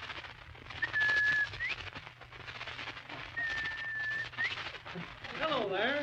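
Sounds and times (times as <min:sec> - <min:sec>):
person whistling an imitation of a bobwhite quail call: 0:00.8 - 0:01.8, 0:03.4 - 0:04.6.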